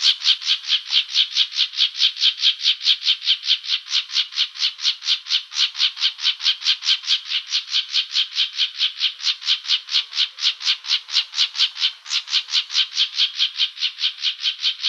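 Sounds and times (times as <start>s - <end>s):
Plumbeous Vireo harsh buzzy chattering calls in Arizona: 0.0s - 14.8s.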